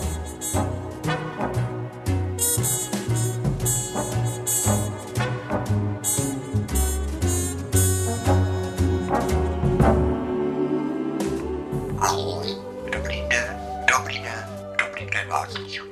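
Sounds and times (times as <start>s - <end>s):
steady tonal background: 0.0s - 15.9s
pet parrot squawking and chattering: 12.0s - 15.9s
voices: 12.0s - 15.9s.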